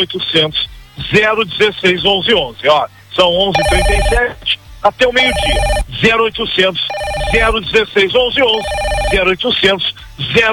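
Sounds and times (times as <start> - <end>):
speech: 0.0 - 10.5
telephone ringing with incoming calls to an order line: 3.6 - 6.2, 6.9 - 9.5.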